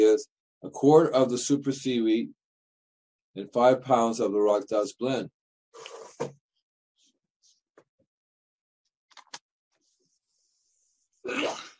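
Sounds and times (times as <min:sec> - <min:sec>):
speech: 0:00.2 - 0:02.4, 0:03.4 - 0:06.4, 0:11.2 - 0:11.7
person sneezing loudly: 0:11.3 - 0:11.7.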